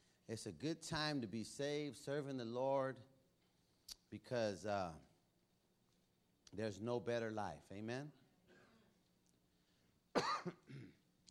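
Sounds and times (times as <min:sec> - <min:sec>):
speech: 0:00.3 - 0:03.1, 0:04.1 - 0:05.1, 0:06.5 - 0:08.2, 0:10.4 - 0:11.0
loud cough: 0:08.5 - 0:09.0, 0:10.1 - 0:11.1
throat-clearing rasp: 0:08.5 - 0:09.0, 0:10.2 - 0:11.1.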